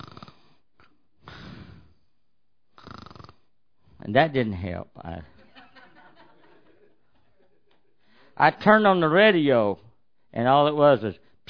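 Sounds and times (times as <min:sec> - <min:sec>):
person imitating snoring: 0:00.0 - 0:00.5, 0:02.8 - 0:03.4
speech: 0:04.0 - 0:05.4, 0:08.4 - 0:11.4
laughter: 0:05.2 - 0:08.0.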